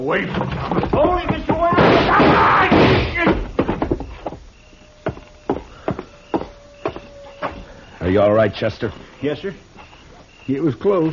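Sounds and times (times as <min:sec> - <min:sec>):
speech: 0:00.0 - 0:02.6, 0:08.1 - 0:09.7, 0:10.5 - 0:11.1
gunshots from two people firing: 0:01.7 - 0:03.4.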